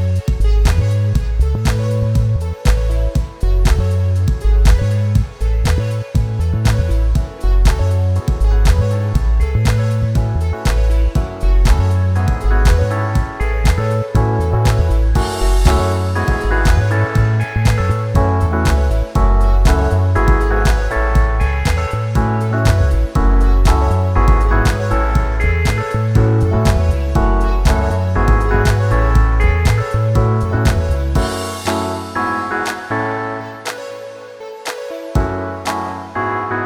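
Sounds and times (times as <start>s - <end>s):
happy calm classical violin music: 0.2s - 36.5s.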